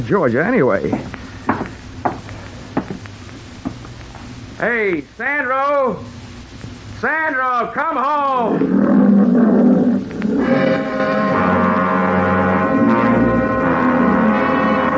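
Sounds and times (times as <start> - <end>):
speech: 0.0 - 1.2, 4.6 - 6.2, 7.0 - 9.5
old Liberian lion roaring: 8.5 - 14.8.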